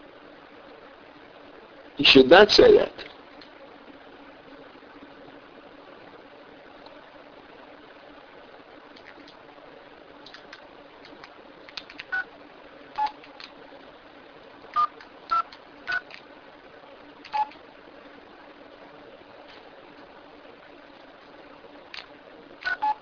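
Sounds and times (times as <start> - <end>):
steady low hiss: 0.0 - 23.0
speech: 2.0 - 3.1
short electronic phone keypad beeps: 13.0 - 13.2, 14.8 - 16.0, 17.3 - 17.6, 22.6 - 23.0.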